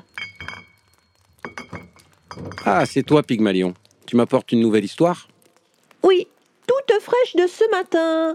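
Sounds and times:
glass knocking against glass: 0.0s - 3.0s
glass jar clinking and rattling as its lid is worked open: 0.0s - 3.7s
speech: 2.4s - 5.3s, 7.1s - 8.3s.

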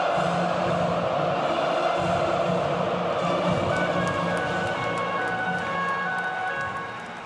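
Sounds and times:
many voices of residents singing the national anthem from windows and rooftops: 0.0s - 7.2s
scattered clapping: 3.2s - 7.2s.

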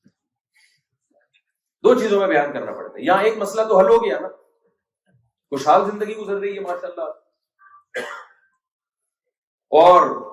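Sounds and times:
speech: 1.8s - 4.4s, 5.5s - 7.2s, 8.0s - 8.2s, 9.7s - 10.3s
light short throaty cough: 7.7s - 8.6s.

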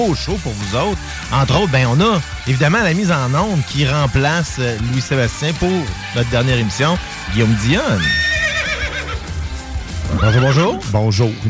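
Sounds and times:
speech: 0.0s - 8.3s, 10.1s - 11.4s
horse whinnying: 7.4s - 9.4s, 10.0s - 10.8s.

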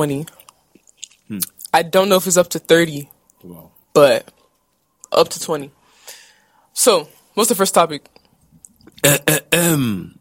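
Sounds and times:
speech: 0.0s - 0.4s, 1.3s - 4.4s, 5.1s - 5.8s, 6.8s - 8.2s, 9.0s - 10.1s
person clearing throat: 8.9s - 10.1s.

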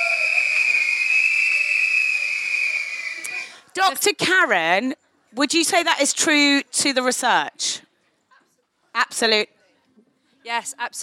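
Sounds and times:
whistle blown in a long shrill blast: 0.0s - 3.5s
speech: 3.8s - 7.8s, 9.0s - 9.5s, 10.4s - 11.0s.

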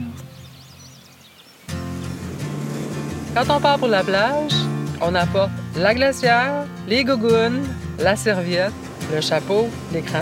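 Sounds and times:
faint birdsong outdoors in spring: 0.0s - 10.1s
speech: 3.4s - 10.1s.

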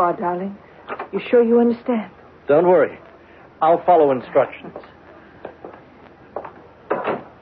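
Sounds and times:
speech: 0.0s - 4.9s
soft wooden knocks and creaks of a door being handled: 6.9s - 7.3s
door thumping as it swings shut: 6.9s - 7.4s.

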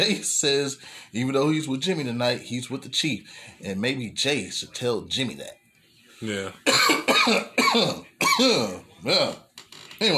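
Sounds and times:
speech: 0.0s - 5.6s, 6.2s - 9.4s, 10.0s - 10.1s
harsh phlegmy coughs: 6.6s - 8.8s
throat clearing: 6.7s - 8.8s.

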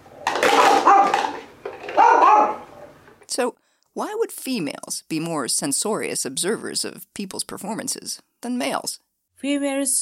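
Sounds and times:
small dog giving high-pitched yipping barks: 0.7s - 1.3s, 2.0s - 2.7s
speech: 3.4s - 10.0s.

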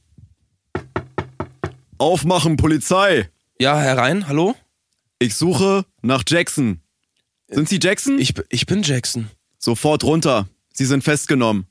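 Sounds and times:
firm knocks on a door: 0.8s - 2.0s
speech: 2.0s - 4.6s, 5.2s - 6.8s, 7.5s - 11.6s.

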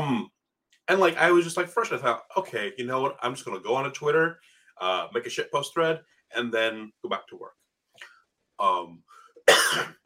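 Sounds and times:
speech: 0.9s - 10.0s
person coughing: 9.5s - 10.0s.

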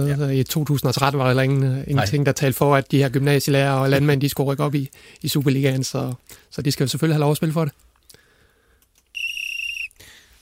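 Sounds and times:
speech: 0.0s - 7.9s
referee's whistle blast: 9.2s - 10.0s.

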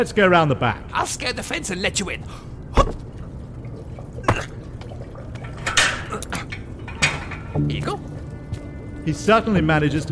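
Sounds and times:
speech: 0.0s - 2.5s, 7.6s - 8.1s, 9.0s - 10.1s
garden water feature trickling: 1.2s - 10.1s
water feature dripping: 2.2s - 9.2s
water feature splashing: 2.6s - 8.3s.

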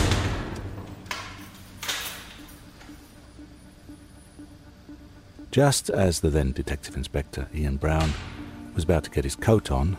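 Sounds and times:
heavy door slamming shut in a hard space: 0.0s - 0.9s, 8.0s - 8.4s
speech: 5.5s - 9.9s.

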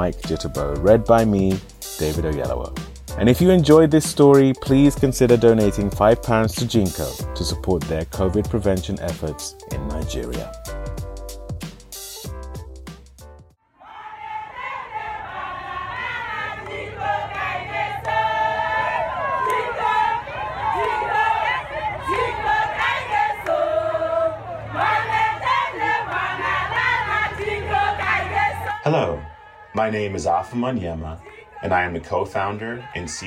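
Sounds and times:
speech: 0.0s - 10.6s, 30.0s - 33.2s
large group of women cheering and ululating: 13.8s - 29.7s.

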